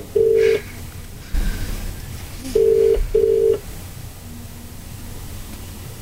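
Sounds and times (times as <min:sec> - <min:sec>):
outgoing call ringing tone over a phone line: 0:00.0 - 0:00.7, 0:02.4 - 0:03.6.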